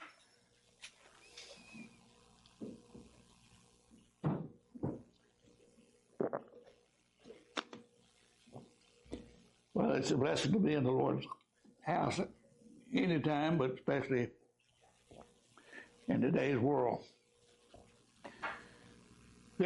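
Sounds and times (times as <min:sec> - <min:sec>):
speaker sipping and gulping water in a church: 0:06.2 - 0:06.8
speech: 0:10.0 - 0:12.4, 0:13.0 - 0:14.4, 0:16.1 - 0:17.2.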